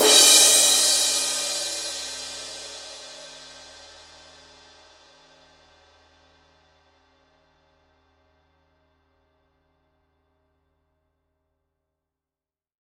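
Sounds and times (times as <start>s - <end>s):
Paiste 2002 20 inch power crash cymbal stroke: 0.0s - 4.7s.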